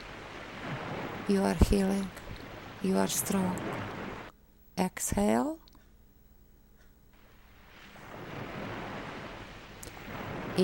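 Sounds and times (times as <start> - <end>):
ocean waves surf roar: 0.0 - 4.3, 7.2 - 10.6
soft wind-like hiss: 0.0 - 4.3, 7.2 - 10.6
speech: 1.3 - 2.2, 2.8 - 4.0, 4.8 - 5.6.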